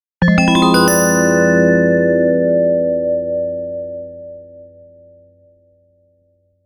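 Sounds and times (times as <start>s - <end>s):
jingle: 0.2s - 3.0s.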